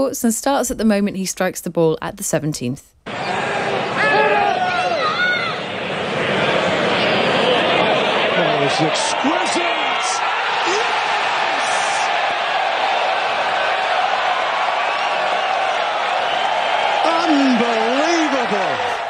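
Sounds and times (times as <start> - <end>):
speech: 0.0 - 3.3, 8.8 - 9.6
large golf tournament crowd roaring and cheering after a putt: 3.1 - 19.0
excited whoops: 3.2 - 5.6, 8.9 - 19.0.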